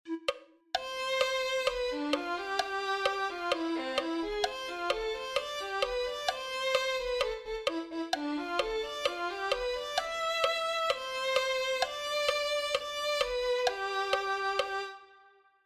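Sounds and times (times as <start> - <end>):
violin: 0.1 - 15.5.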